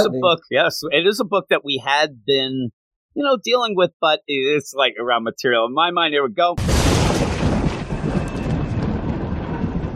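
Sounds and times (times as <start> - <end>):
speech: 0.0 - 7.2
deep crackling thunder rumbling: 6.6 - 9.9.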